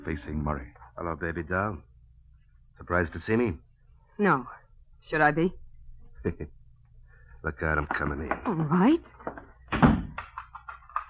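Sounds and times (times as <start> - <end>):
speech: 0.0 - 1.9, 2.8 - 3.6, 4.2 - 5.6, 6.2 - 6.6, 7.4 - 9.8
apartment door thudding shut: 9.7 - 10.2.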